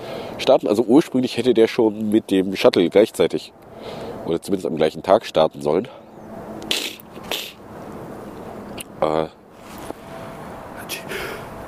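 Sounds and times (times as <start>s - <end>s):
speech: 0.4s - 6.0s, 9.0s - 9.4s
person sneezing: 6.7s - 7.6s.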